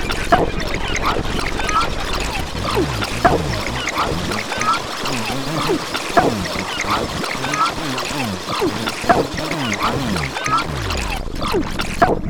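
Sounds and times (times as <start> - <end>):
splashy synth: 0.2 - 12.2.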